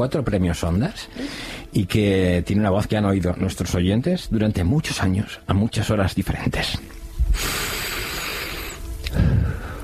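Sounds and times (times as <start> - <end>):
speech: 0.0 - 7.8
man breathing in deeply: 1.1 - 1.7, 7.3 - 9.8
soft low puff of air: 7.3 - 9.8.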